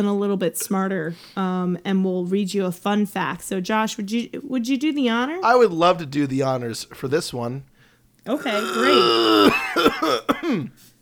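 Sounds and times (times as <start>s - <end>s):
speech: 0.0s - 10.9s
raspy throaty coughing: 8.4s - 10.8s.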